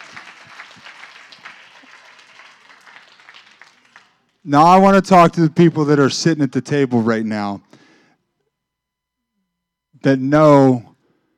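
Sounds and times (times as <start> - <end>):
crowd applauding: 0.0 - 4.4
speech: 4.4 - 7.7, 10.0 - 10.9.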